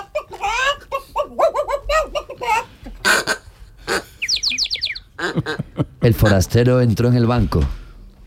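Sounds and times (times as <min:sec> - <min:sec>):
chickens clucking in street: 0:00.0 - 0:05.7
ducks squawking in street: 0:00.0 - 0:06.6
small birds chirping rapidly in street: 0:04.1 - 0:05.2
speech: 0:05.4 - 0:07.8.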